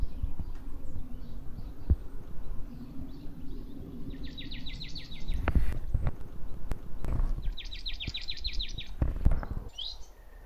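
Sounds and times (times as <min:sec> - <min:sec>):
constant low background hum: 0:00.0 - 0:09.7
marsh tit Poecile palustris calling with high rattling notes: 0:01.6 - 0:09.0.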